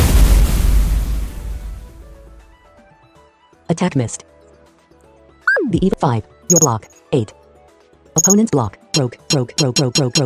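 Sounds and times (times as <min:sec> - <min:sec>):
video game cannon-like blast: 0:00.0 - 0:02.4
speech: 0:03.8 - 0:04.4, 0:05.7 - 0:07.4, 0:08.2 - 0:10.2.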